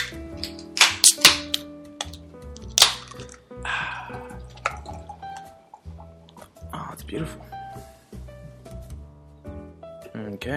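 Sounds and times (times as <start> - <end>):
music: 0.0 - 10.5
beer pouring into a glass: 2.7 - 6.4
speech: 7.1 - 7.5, 10.2 - 10.5.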